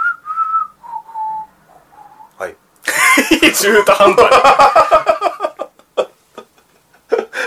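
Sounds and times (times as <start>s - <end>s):
person whistling a short wavering phrase: 0.0s - 2.4s
speech: 2.4s - 2.6s, 3.2s - 5.0s
laughter: 2.9s - 7.4s.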